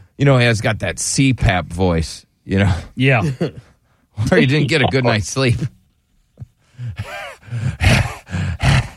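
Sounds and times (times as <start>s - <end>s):
speech: 0.2s - 5.8s
person imitating heavy dog-like panting breathing: 6.6s - 8.9s.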